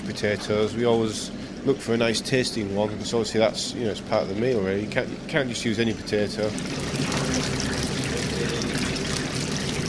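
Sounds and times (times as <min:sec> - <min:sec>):
speech: 0:00.1 - 0:07.7
battered fish frying in a deep fryer: 0:06.0 - 0:09.8.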